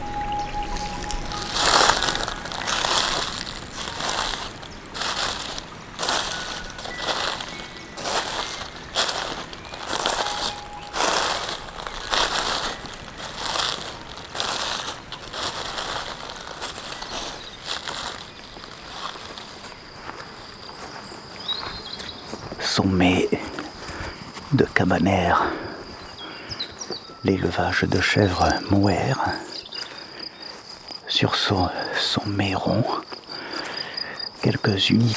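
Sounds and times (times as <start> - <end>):
footsteps crunching through a carpet of dead leaves on a trail: 0.0 - 35.1
speech: 22.8 - 23.5, 24.5 - 25.6, 27.2 - 29.5, 31.2 - 33.0, 34.5 - 35.1.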